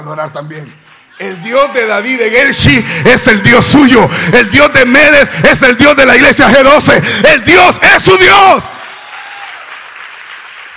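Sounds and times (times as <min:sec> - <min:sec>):
speech: 0:00.0 - 0:08.8
large crowd applauding: 0:00.6 - 0:05.0, 0:08.2 - 0:10.7
crowd cheering: 0:00.8 - 0:06.2, 0:08.0 - 0:10.7.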